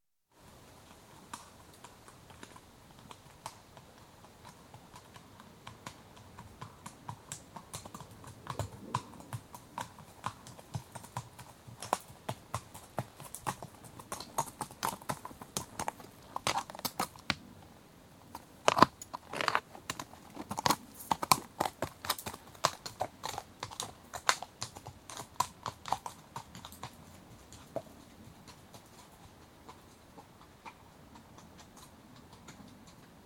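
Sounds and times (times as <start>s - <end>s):
horse walking on rough track: 0.8s - 33.2s
horse fidgeting: 18.3s - 21.5s.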